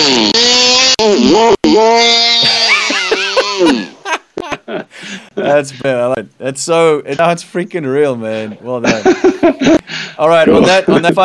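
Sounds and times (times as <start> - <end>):
person mimicking a chainsaw with their voice: 0.0 - 3.9
laughter: 2.4 - 5.6, 8.8 - 11.2
speech: 5.6 - 11.2.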